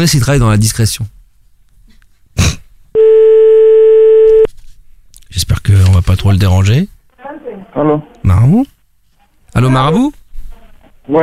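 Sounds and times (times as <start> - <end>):
speech: 0.0 - 1.2, 5.3 - 8.8, 9.5 - 10.2, 11.1 - 11.2
telephone call ringing out: 3.0 - 4.5.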